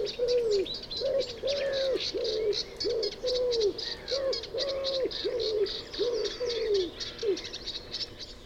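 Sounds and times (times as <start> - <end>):
common wood pigeon Columba palumbus cooing: 0.0 - 7.4
high twittering birds: 0.0 - 8.4.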